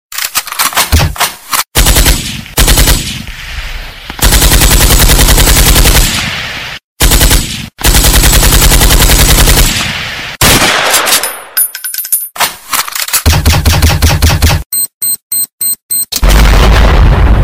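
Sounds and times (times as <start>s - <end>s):
war gunfire: 0.8s - 3.4s, 4.1s - 6.4s, 7.0s - 11.6s, 12.4s - 14.6s, 16.2s - 17.3s.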